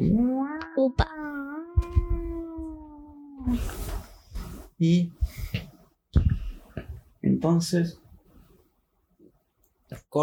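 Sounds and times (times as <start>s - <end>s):
voice imitating a police siren: 0.0s - 3.6s
speech: 4.8s - 5.6s, 7.4s - 8.0s.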